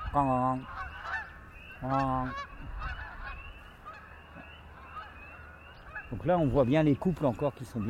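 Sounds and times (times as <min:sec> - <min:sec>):
flock of geese honking overhead: 0:00.0 - 0:07.8
speech: 0:00.1 - 0:00.8, 0:01.8 - 0:02.7, 0:06.1 - 0:07.8.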